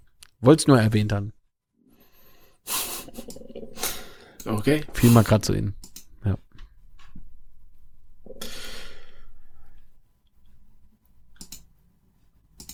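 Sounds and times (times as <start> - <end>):
speech: 0.4 - 1.4, 2.6 - 2.9, 4.4 - 6.4
computer mouse clicks: 5.8 - 6.1, 11.3 - 11.7, 12.6 - 12.7
long breathy sigh or exhale: 8.3 - 9.8.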